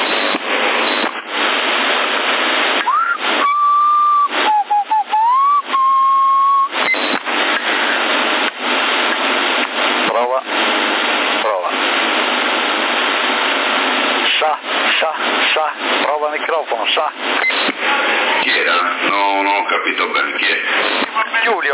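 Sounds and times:
CB radio channel static hiss: 0.0 - 21.7
person whistling into a CB radio microphone: 2.8 - 6.9.

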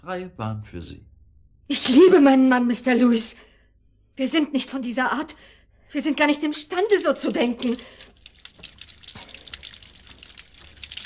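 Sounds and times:
speech: 0.0 - 1.1, 1.7 - 3.5, 4.2 - 8.1
water running from a tap into a washbasin: 6.3 - 11.0.

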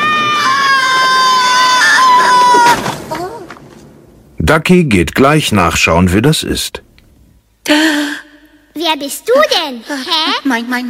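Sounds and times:
cartoonish prehistoric flyer screaming while flung through the air: 0.0 - 2.8
speech: 4.5 - 6.9, 7.7 - 8.1, 8.8 - 10.8.

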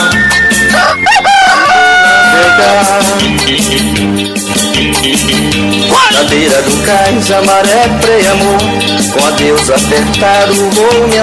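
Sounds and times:
rooster crowing at dawn: 0.0 - 3.0
dense loud music with steady beats in a live DJ set: 0.0 - 11.2
speech: 6.3 - 11.2.

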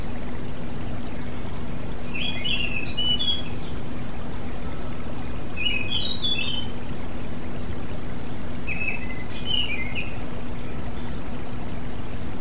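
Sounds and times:
low hum and hiss: 0.0 - 12.3
Oriental magpie-robin singing: 0.6 - 7.0, 8.2 - 11.3.

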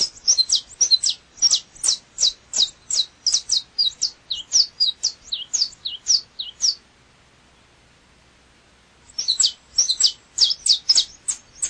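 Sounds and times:
Double-collared seedeater singing high clipped chirps and twitters: 0.0 - 6.8, 9.1 - 11.6.

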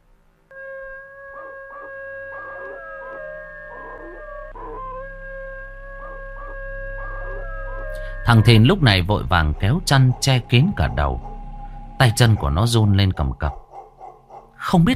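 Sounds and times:
black dog howling and barking in a yard at night: 0.6 - 8.0, 9.3 - 12.7, 13.5 - 14.6
speech: 8.3 - 11.3, 12.0 - 13.6, 14.6 - 14.9.

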